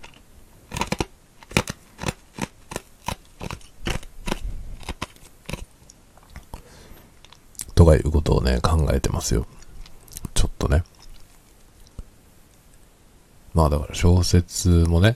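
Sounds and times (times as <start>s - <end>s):
crunchy bites of ice being chewed: 0.0s - 7.7s, 9.4s - 12.8s
speech: 7.9s - 9.6s, 13.6s - 15.1s.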